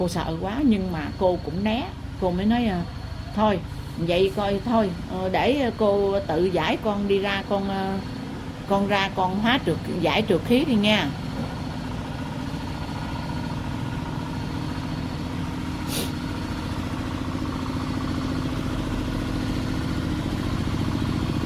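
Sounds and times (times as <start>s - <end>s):
speech: 0.0s - 11.5s
tractor engine chugging as the tractor passes by: 0.0s - 21.4s
sharp hiss: 15.8s - 16.3s.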